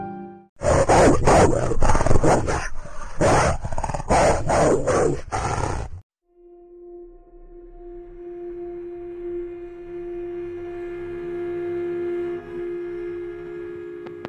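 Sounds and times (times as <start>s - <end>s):
several dogs barking and growling: 0.6s - 6.1s
sustained tonal drone: 6.3s - 14.2s.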